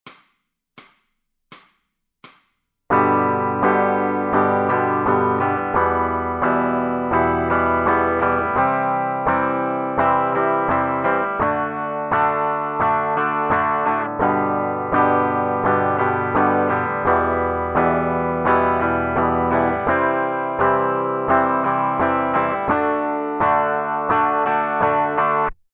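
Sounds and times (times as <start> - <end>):
guitar strumming patterns: 2.9 - 25.6.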